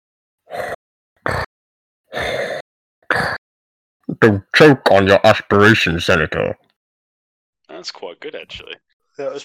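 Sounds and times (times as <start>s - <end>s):
voice imitating heavy mechanical respirator breathing: 2.1s - 3.4s
speech: 4.2s - 6.7s, 7.8s - 9.4s.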